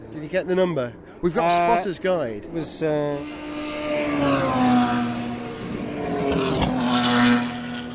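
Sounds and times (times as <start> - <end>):
speech: 0.3 - 3.5, 4.1 - 4.7
race car passing at speed during qualifying: 2.6 - 7.9.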